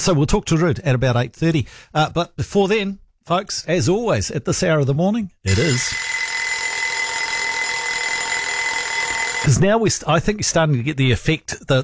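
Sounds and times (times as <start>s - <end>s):
speech: 0.0s - 6.1s, 9.4s - 11.8s
alarm clock ringing: 5.5s - 9.5s.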